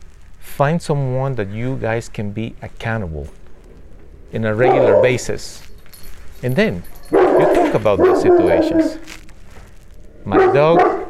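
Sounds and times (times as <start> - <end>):
speech: 0.6 - 3.4, 4.3 - 5.7, 6.4 - 7.0, 7.7 - 9.2, 10.2 - 11.0
dog barking: 4.5 - 5.4, 7.0 - 9.2, 10.3 - 11.0.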